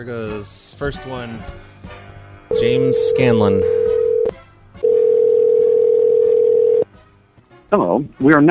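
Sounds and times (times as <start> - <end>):
speech: 0.0 - 4.0, 7.7 - 8.4
telephone ringback tone while placing a call: 2.5 - 6.8.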